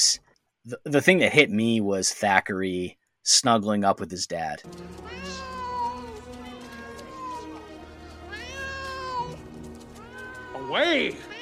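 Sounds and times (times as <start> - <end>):
speech: 0.0 - 5.4, 10.7 - 11.3
cat meowing: 5.0 - 11.4.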